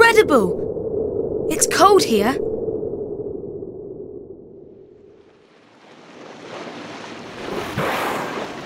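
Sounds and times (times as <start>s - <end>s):
speech: 0.1s - 0.7s, 1.8s - 2.5s
ocean waves crashing on the shore on a cloudy day: 5.1s - 8.6s.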